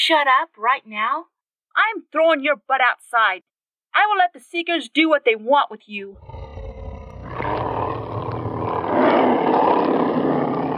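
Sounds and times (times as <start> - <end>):
speech: 0.1 - 6.4
creature roaring outside: 6.2 - 10.7.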